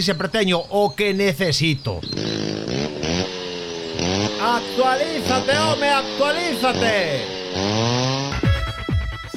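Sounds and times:
speech: 0.0 - 2.4, 4.4 - 8.0
chainsaw droning and revving: 2.0 - 8.8.

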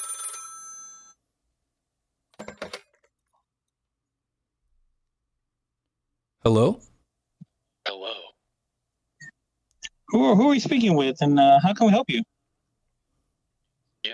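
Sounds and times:
telephone bell ringing: 0.0 - 1.2
speech: 6.4 - 6.9, 10.1 - 12.3.

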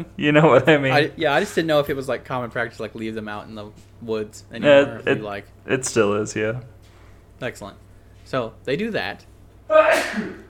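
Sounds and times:
speech: 0.0 - 6.8, 7.4 - 10.4
person sneezing: 9.7 - 10.4.

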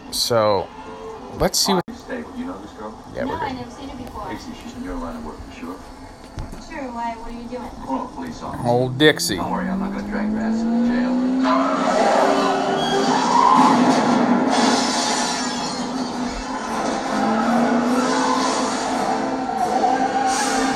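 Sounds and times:
speech: 0.1 - 1.9, 6.7 - 12.1
car engines roaring in a car chase: 7.8 - 15.2, 15.8 - 20.7
tires squealing and skidding in a car chase: 9.5 - 20.7.

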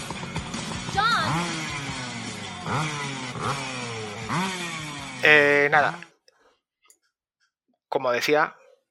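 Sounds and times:
dirt bike engine revving and idling: 0.0 - 6.2
speech: 2.7 - 3.7, 5.2 - 6.1, 8.0 - 8.6.

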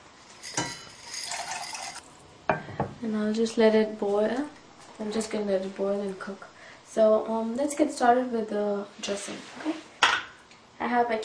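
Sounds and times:
dry pasta tumbling into a pot of salted water: 0.4 - 2.0
speech: 3.0 - 9.8, 10.9 - 11.2.

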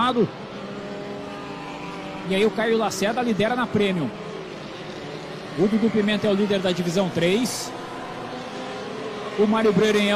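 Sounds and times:
race car engines roaring as a field of cars passes on the track: 0.0 - 10.1
speech: 0.1 - 0.6, 2.3 - 4.2, 5.6 - 7.8, 9.4 - 10.1.

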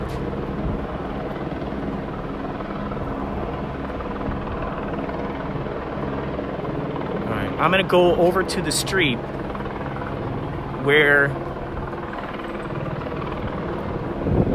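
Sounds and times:
helicopters hovering overhead with rotor blade chop: 0.0 - 14.5
speech: 7.6 - 9.4, 10.8 - 11.5.

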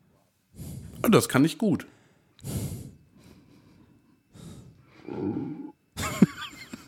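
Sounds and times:
speech: 1.1 - 2.6
heavy breathy exhales: 1.9 - 3.1, 4.3 - 5.7
short grunt-like noise: 5.0 - 5.7
suppressed burp held back in the throat: 5.1 - 5.8
laughter: 6.0 - 6.8.

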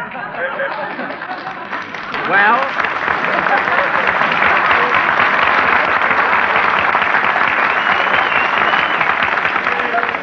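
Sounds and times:
laughter: 0.0 - 8.9
large audience applause: 0.6 - 10.2
speech: 2.3 - 2.8.

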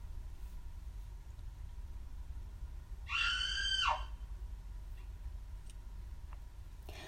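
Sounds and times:
low rumble of noise: 0.0 - 7.0
high-pitched woman's scream: 3.1 - 4.1.

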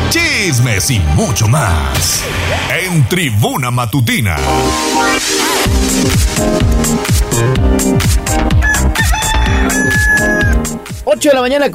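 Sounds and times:
bouncy rhythmic music track with a strong bass beat: 0.0 - 11.7
speech: 0.1 - 11.7
rooster crowing loudly: 8.6 - 10.8.

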